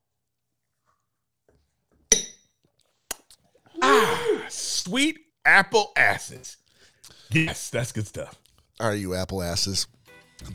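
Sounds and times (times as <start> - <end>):
glasses clinking in a toast: 2.1 - 2.4
speech: 4.0 - 6.6, 7.3 - 10.5.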